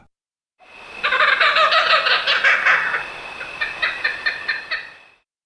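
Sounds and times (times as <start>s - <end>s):
kookaburra call: 0.8s - 5.1s.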